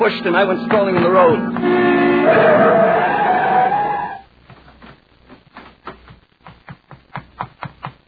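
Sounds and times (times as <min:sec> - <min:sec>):
speech: 0:00.0 - 0:03.0
tires screeching loudly: 0:01.4 - 0:04.2
car approaching on a highway skidding to a stop: 0:02.2 - 0:04.2.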